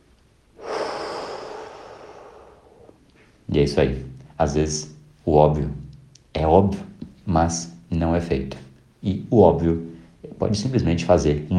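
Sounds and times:
deep breath during a guided breathing exercise: 0.6s - 3.4s
speech: 3.5s - 11.5s.

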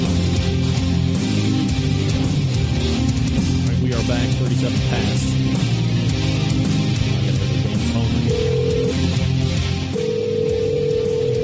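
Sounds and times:
dense humming musical background: 0.0s - 11.4s
speech: 4.2s - 5.8s
telephone ringing in electronic tones: 8.3s - 11.4s.

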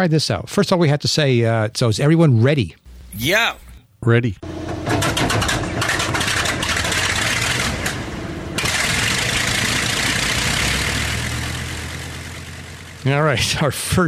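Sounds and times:
speech: 0.0s - 4.6s, 13.0s - 14.0s
Bristol Hercules radial aircraft engine running: 2.8s - 3.8s, 4.5s - 13.0s.

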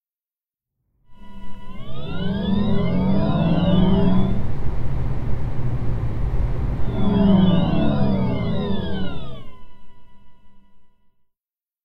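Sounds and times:
Volkswagen ID.3 electric car artificial pedestrian warning sound: 1.2s - 10.7s.

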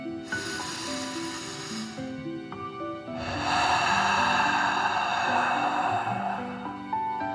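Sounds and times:
longer forceful hissing exhale: 0.0s - 2.3s, 3.2s - 7.3s
gentle music: 0.0s - 7.3s
deep breath in: 0.2s - 2.2s, 3.1s - 7.2s.

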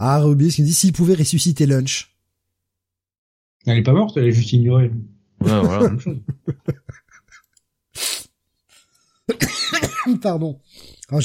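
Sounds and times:
speech: 0.0s - 2.1s, 3.6s - 7.0s, 9.3s - 11.2s
laughter: 5.4s - 7.5s
harsh coughs: 9.3s - 10.2s.

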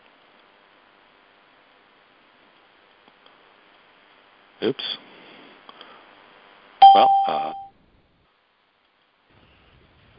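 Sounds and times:
speech: 4.6s - 5.0s, 6.9s - 7.6s
mobile phone beep turning off: 6.8s - 7.7s.

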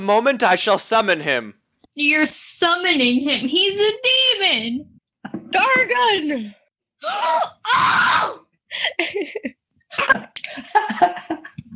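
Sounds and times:
speech: 0.0s - 11.5s
person screeching: 7.0s - 8.4s.

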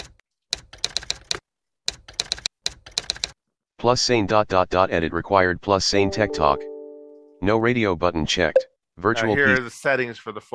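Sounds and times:
typing on a computer keyboard entering text into an edit box: 0.0s - 3.4s
speech: 3.8s - 6.7s, 7.4s - 10.5s.

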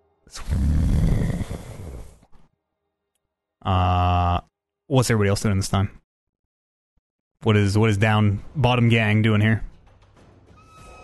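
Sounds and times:
speech: 0.3s - 0.8s, 3.6s - 4.2s, 4.9s - 6.0s, 7.4s - 9.7s
person snoring rough and raspy: 0.3s - 2.3s.

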